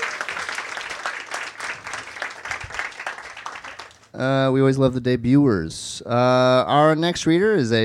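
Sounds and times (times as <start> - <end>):
crowd applauding: 0.0 - 4.1
speech: 4.2 - 7.8.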